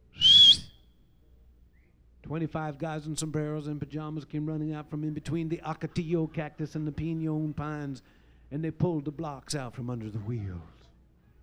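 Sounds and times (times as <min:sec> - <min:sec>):
short high-pitched human whistle: 0:00.0 - 0:00.8
speech: 0:02.3 - 0:10.8.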